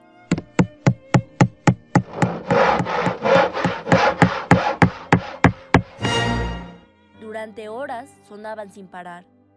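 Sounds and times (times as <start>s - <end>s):
rhythmic back-and-forth sawing during house renovation: 0.3s - 6.7s
hammer blows during house renovation: 0.3s - 6.8s
speech: 7.4s - 9.4s.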